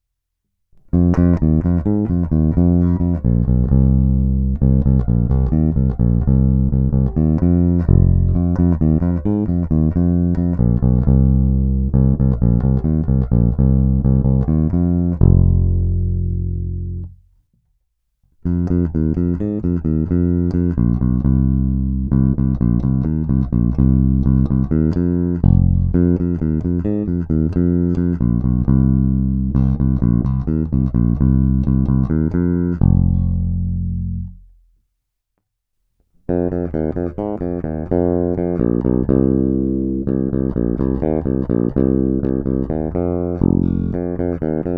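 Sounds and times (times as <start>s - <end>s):
Greco TB-750 Thunderbird bass guitar: 0.8s - 17.4s, 18.4s - 34.8s, 36.2s - 44.7s.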